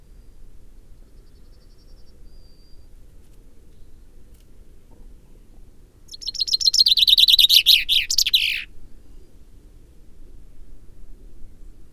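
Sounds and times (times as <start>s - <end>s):
common chaffinch Fringilla coelebs singing: 6.1s - 8.7s.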